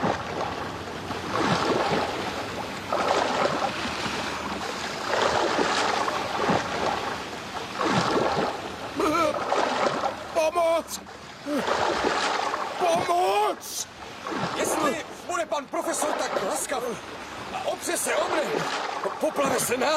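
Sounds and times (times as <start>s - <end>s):
rolling sea waves surging: 0.0s - 19.9s.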